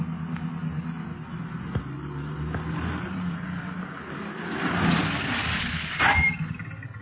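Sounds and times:
several police car engines rumbling: 0:00.0 - 0:07.0
short squealing tone of police cars halting: 0:05.8 - 0:07.0.

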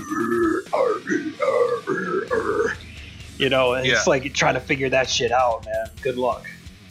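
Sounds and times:
man growling guttural vocals mimicking death metal: 0:00.0 - 0:04.1
speech: 0:03.4 - 0:06.6.

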